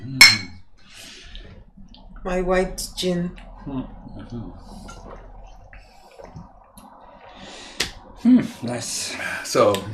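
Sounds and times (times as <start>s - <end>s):
glasses clinking in a toast: 0.2s - 0.6s
speech: 2.2s - 5.1s, 8.2s - 9.9s.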